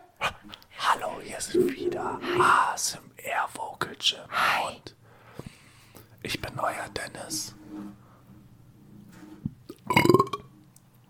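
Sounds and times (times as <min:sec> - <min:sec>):
speech: 0:01.1 - 0:05.0, 0:06.2 - 0:08.0
soft burp: 0:09.7 - 0:10.5.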